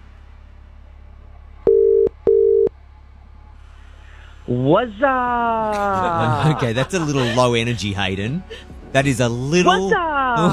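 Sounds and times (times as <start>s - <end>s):
telephone ringback tone as a call is placed: 1.7s - 2.7s
speech: 4.5s - 10.5s
laughter: 4.7s - 10.5s.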